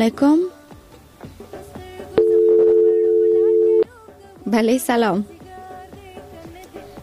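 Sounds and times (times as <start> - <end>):
speech: 0.0 - 0.5, 4.5 - 5.3
telephone line tone as a call is placed: 2.2 - 3.9.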